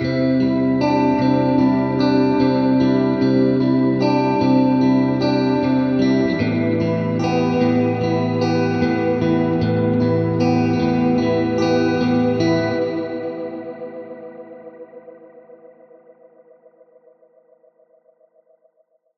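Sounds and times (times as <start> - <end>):
guitar warbly howl: 0.0 - 14.6.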